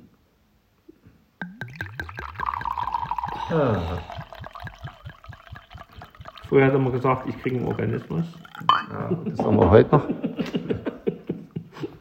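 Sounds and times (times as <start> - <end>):
white wine from Spain poured from a bottle into glasses: 1.4 - 9.7
speech: 3.5 - 4.1, 6.5 - 10.7
laughter: 8.9 - 11.9.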